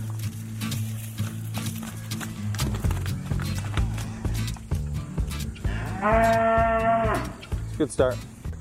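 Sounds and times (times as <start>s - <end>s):
cow hoof steps clattering and shuffling: 0.0s - 8.5s
cow mooing separated from its calf: 5.6s - 7.4s
speech: 6.0s - 6.5s, 7.8s - 8.3s.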